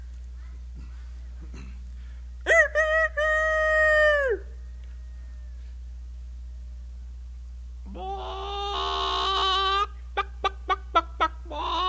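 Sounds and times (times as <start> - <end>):
hen cackling after laying an egg: 2.5 - 4.6, 7.9 - 11.8
hen clucking after laying an egg: 8.6 - 11.8.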